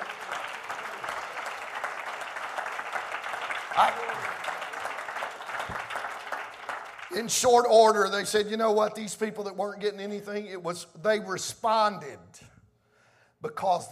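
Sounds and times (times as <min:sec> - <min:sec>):
congregation clapping: 0:00.0 - 0:09.1
speech: 0:03.8 - 0:04.5, 0:07.1 - 0:12.3, 0:13.5 - 0:13.9.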